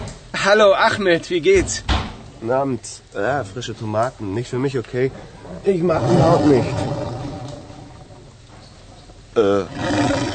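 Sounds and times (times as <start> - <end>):
speech: 0.4 - 7.0, 9.4 - 9.9
stomach growling from hunger: 5.5 - 8.5.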